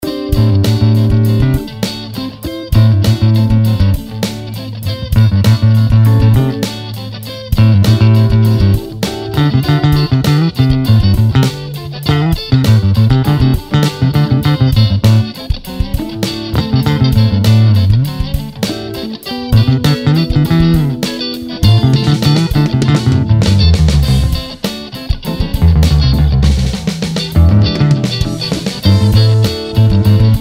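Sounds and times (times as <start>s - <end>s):
funk bass solo: 0.0s - 30.3s.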